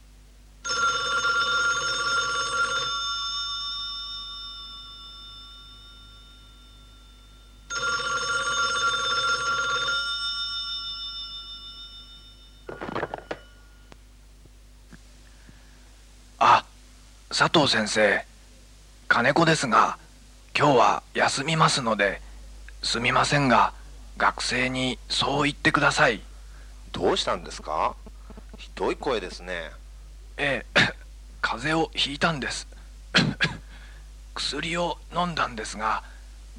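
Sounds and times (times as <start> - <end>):
university telephone ringing in long electronic bursts: 0.6 - 13.9
speech: 17.4 - 18.3, 19.2 - 20.0, 20.6 - 22.2, 22.8 - 26.3, 27.0 - 28.0, 28.8 - 29.8, 30.4 - 33.3, 34.4 - 36.5.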